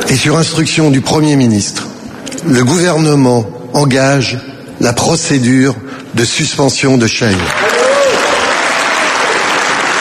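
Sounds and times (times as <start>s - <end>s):
speech: 0.1s - 7.8s
applause for a French government minister's speech: 7.4s - 9.9s.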